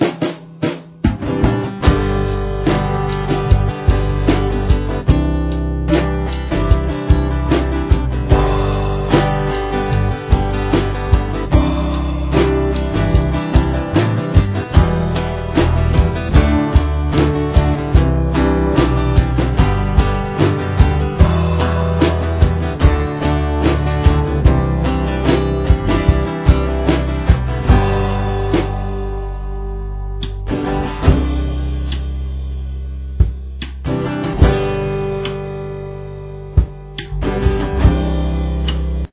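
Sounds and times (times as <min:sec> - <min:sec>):
backing track music: 0:00.0 - 0:39.1.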